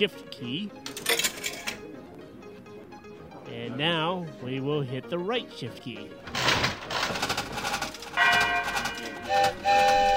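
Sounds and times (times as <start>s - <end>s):
speech: 0.0s - 1.1s, 3.5s - 6.4s
silver dollar coins clattering out in a slot machine payout: 0.9s - 1.8s, 6.4s - 9.3s
one-armed bandit slot machine in a computer game whirring through a spin: 7.1s - 10.0s
bright ringing chime tones of a slot machine game: 8.2s - 9.3s.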